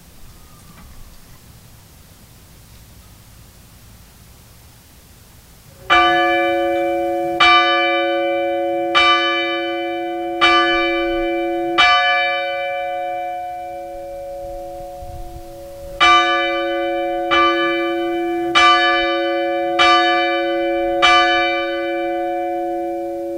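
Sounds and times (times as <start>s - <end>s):
fire bell rung in signal: 5.8s - 23.3s.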